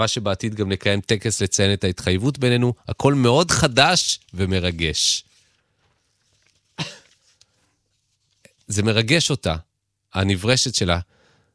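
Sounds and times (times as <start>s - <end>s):
speech: 0.0s - 5.3s, 8.7s - 11.2s
man coughing: 6.8s - 7.2s.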